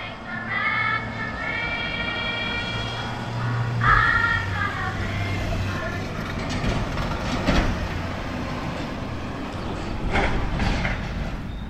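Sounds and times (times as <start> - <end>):
delivery truck engine droning in a parking lot: 0.0 - 11.6
delivery truck clunks and rattles: 5.9 - 11.6.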